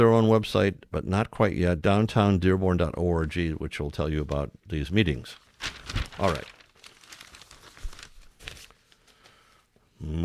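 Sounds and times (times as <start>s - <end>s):
speech: 0.0s - 6.6s, 10.0s - 10.2s
newspaper pages rustling and crinkling while handled: 5.2s - 9.6s.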